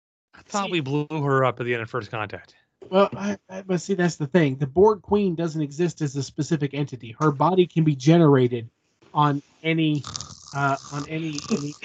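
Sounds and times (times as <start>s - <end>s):
speech: 0.5s - 11.8s
person making an exaggerated voiced snoring sound: 10.0s - 11.8s.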